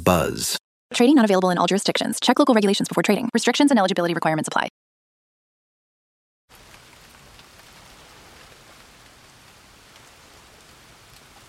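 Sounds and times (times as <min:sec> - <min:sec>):
speech: 0:00.0 - 0:04.8
steady rain: 0:06.5 - 0:11.4.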